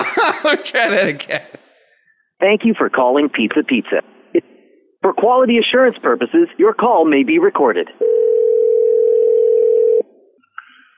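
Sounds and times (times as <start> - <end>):
laughter: 0.0 - 1.7
speech: 0.3 - 1.6, 2.4 - 8.4
telephone dial tone while redialing: 8.0 - 10.0.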